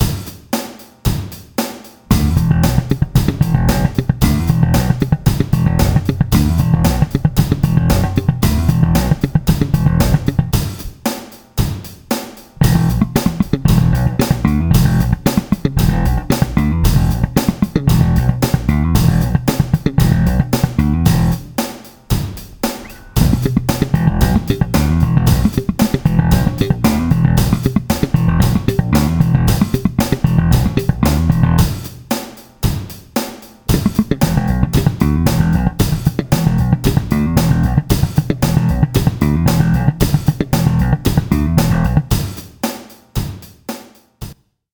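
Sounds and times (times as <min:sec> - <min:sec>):
fast slap paradiddle drum exercise: 0:00.0 - 0:44.4.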